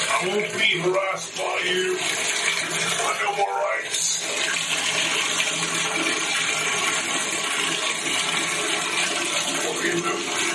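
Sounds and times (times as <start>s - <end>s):
toilet flushing with splashing water: 0.0s - 10.5s
speech: 0.2s - 5.4s, 9.8s - 10.5s.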